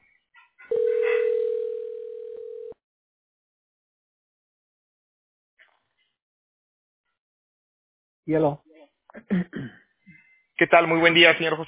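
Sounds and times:
telephone line tone: 0.7 - 2.8
speech: 8.3 - 9.8, 10.6 - 11.6.

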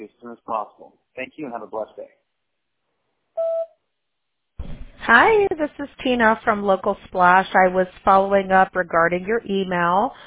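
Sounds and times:
speech: 0.0 - 2.2, 5.0 - 10.2
answering machine beep signalling the start of message recording: 3.4 - 3.7.

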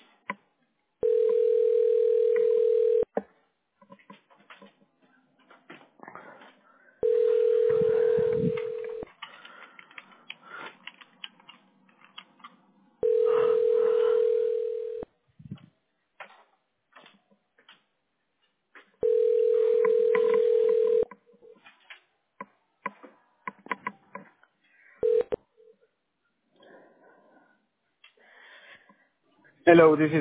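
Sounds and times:
faint clatter: 0.0 - 27.0
telephone ringback tone while calling: 1.0 - 3.1, 7.0 - 9.0, 13.0 - 15.1, 19.0 - 21.1, 25.0 - 25.4
speech: 29.7 - 30.1.

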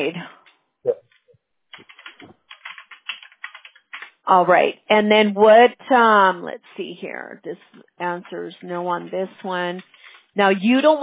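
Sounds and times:
speech: 0.0 - 0.4, 4.3 - 11.0
typing on a computer keyboard: 1.7 - 4.2.

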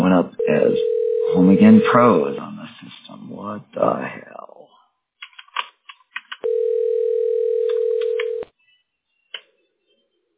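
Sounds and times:
speech: 0.2 - 2.4, 3.5 - 4.2
electronic ring tone of a phone line on an outgoing call: 0.4 - 2.2, 6.4 - 8.4.

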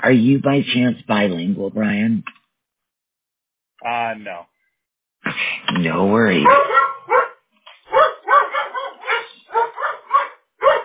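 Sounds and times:
speech: 0.0 - 2.4, 3.8 - 4.5, 5.2 - 7.2
dogs barking in sharp yaps: 6.4 - 10.8.

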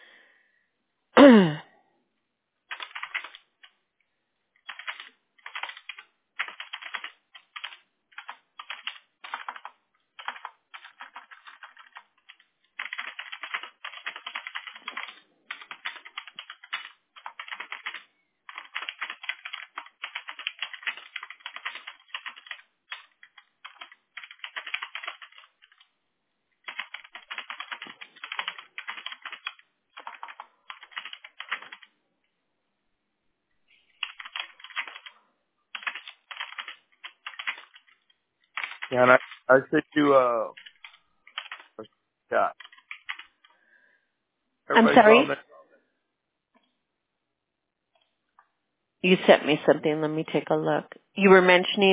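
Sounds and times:
speech: 1.2 - 1.6, 39.0 - 40.6, 42.3 - 42.6, 44.8 - 45.4, 49.1 - 51.9
typing on a computer keyboard: 2.7 - 3.8, 4.6 - 25.9, 26.6 - 31.9, 33.9 - 39.5, 40.5 - 41.8, 42.6 - 43.6.

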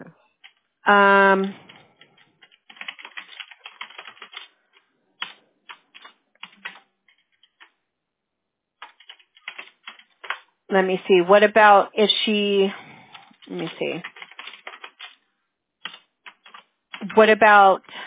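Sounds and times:
typing on a keyboard: 0.4 - 0.6, 1.4 - 7.8, 8.8 - 10.4, 13.1 - 15.2, 15.8 - 17.4
speech: 0.9 - 1.6, 10.7 - 12.8, 13.5 - 14.1, 17.2 - 17.9.

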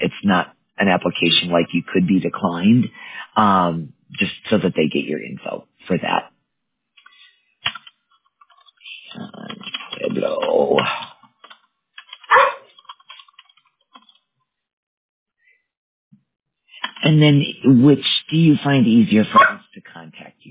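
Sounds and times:
speech: 0.2 - 6.2, 9.2 - 11.1, 17.0 - 20.4
single short sharp dog bark: 12.3 - 12.7, 19.4 - 19.6.

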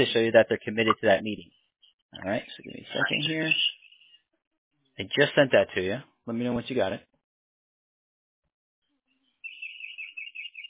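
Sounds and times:
speech: 0.0 - 3.8, 5.0 - 7.1
birds chirping: 0.0 - 5.2, 8.8 - 10.6.

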